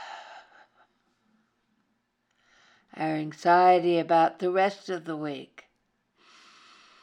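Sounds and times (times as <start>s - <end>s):
faint deep breath: 0.0s - 1.1s, 2.3s - 2.9s, 6.2s - 7.0s
speech: 3.0s - 5.6s.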